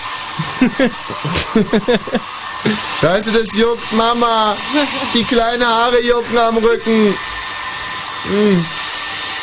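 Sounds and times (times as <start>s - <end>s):
hair dryer blowing: 0.0s - 9.4s
laughter: 0.4s - 2.3s
speech: 0.4s - 7.4s, 8.2s - 8.8s.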